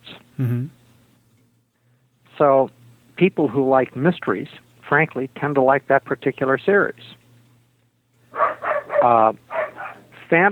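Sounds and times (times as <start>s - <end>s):
speech: 0.4s - 0.8s, 2.4s - 7.2s, 9.0s - 9.4s, 10.3s - 10.4s
dog barking: 8.4s - 10.1s.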